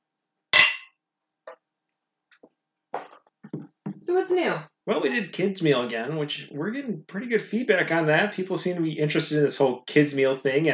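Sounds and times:
beer cans clinked together in a toast: 0.6 - 0.9
speech: 4.0 - 10.7.

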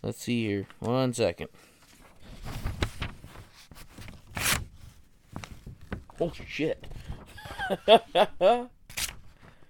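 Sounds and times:
speech: 0.0 - 1.7, 6.2 - 6.9, 7.7 - 8.8
razor-sharp knife blade slicing and ripping paper: 4.3 - 4.7.

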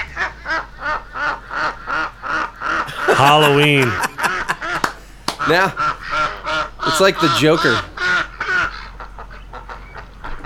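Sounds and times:
duck quacks played slowed down and backwards: 0.0 - 3.1, 4.0 - 10.4
laughter: 2.9 - 5.8, 6.9 - 7.8
speech: 3.2 - 4.0, 5.5 - 5.8, 7.0 - 7.9.

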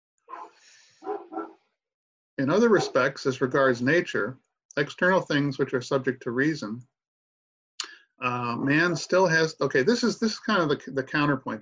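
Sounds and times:
female dog barking: 0.3 - 1.6, 2.7 - 3.1
speech: 2.4 - 6.9, 8.2 - 11.6.

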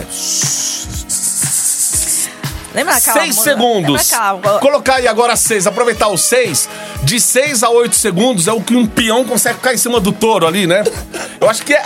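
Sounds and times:
snake hissing: 0.0 - 2.8
speech: 0.1 - 0.4, 2.8 - 11.8.

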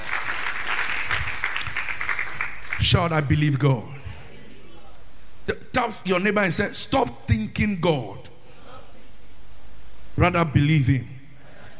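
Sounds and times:
church congregation clapping hands: 0.0 - 3.6
speech: 2.8 - 4.0, 5.5 - 8.3, 10.2 - 11.1.

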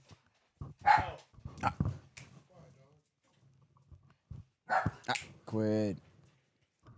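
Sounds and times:
dog barking: 0.8 - 1.2, 4.7 - 5.2
speech: 5.5 - 6.1.

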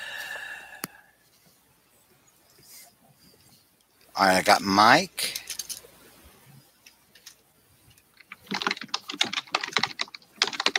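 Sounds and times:
speech: 4.2 - 5.4
typing on a computer keyboard: 8.2 - 10.7.

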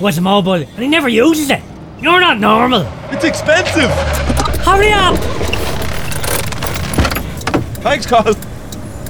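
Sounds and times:
speech: 0.0 - 5.5, 7.8 - 8.5
car's steady low engine and road rumble: 0.0 - 9.0
brief low thud of car coming to a stop: 1.8 - 8.4.

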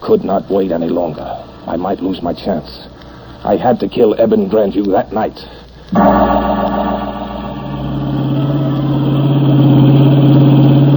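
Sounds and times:
speech: 0.0 - 6.5
blue roadster engine hum driving down a twisting bayou road: 6.0 - 10.9.

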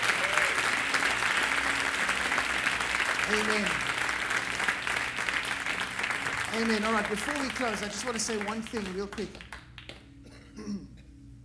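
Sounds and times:
room full of people applauding: 0.0 - 10.2
speech: 3.3 - 3.9, 6.5 - 9.5.

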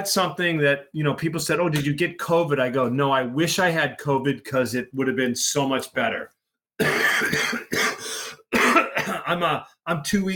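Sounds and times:
speech: 0.0 - 7.8, 9.3 - 10.3
harsh wet coughing: 6.8 - 9.5.

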